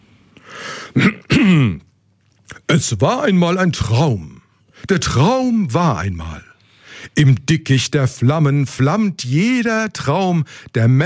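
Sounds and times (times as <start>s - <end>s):
throat clearing: 0.9s - 1.9s
speech: 1.0s - 1.8s, 2.7s - 6.5s, 7.1s - 11.0s.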